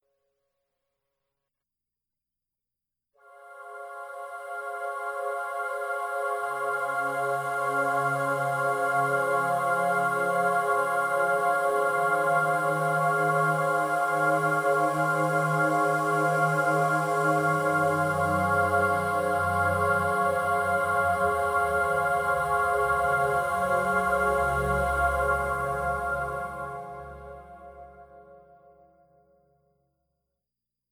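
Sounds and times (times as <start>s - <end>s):
droning choir in D flat: 3.6s - 28.3s.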